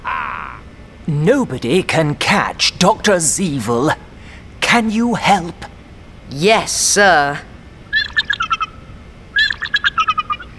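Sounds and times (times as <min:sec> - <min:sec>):
speech: 0:01.1 - 0:04.0, 0:04.7 - 0:05.7, 0:06.3 - 0:07.5
rapid bright bird chirps: 0:07.9 - 0:08.8, 0:09.4 - 0:10.5.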